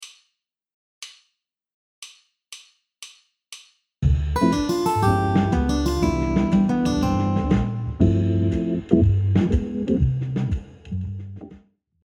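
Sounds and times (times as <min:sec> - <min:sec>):
jazz guitar arpeggio over a ii V7 I progression in C major: 0:04.4 - 0:10.0.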